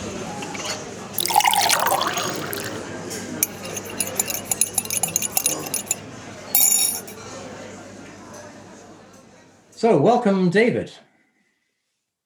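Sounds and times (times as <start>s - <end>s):
china clinking: 0.5s - 2.8s, 3.4s - 7.2s
tea pouring into a cup: 1.1s - 2.9s, 3.5s - 6.0s
speech: 9.8s - 11.1s.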